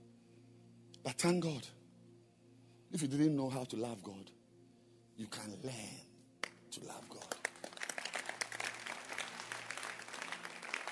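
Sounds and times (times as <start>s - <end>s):
speech: 1.0s - 1.8s, 2.9s - 4.4s, 5.2s - 6.1s, 6.7s - 7.4s
crowd clapping: 6.4s - 10.9s.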